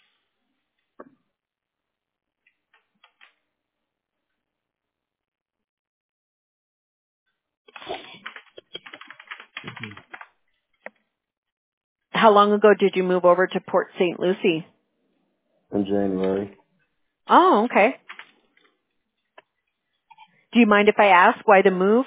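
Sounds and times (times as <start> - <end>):
computer keyboard typing: 7.7 - 10.3, 18.0 - 18.4
speech: 12.2 - 14.7, 15.7 - 16.6, 17.3 - 18.1, 20.5 - 22.0.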